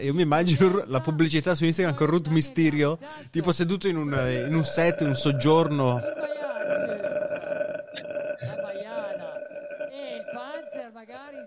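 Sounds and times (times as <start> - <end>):
speech: 0.0 - 7.2
throaty gurgling vocal warble: 3.9 - 11.4.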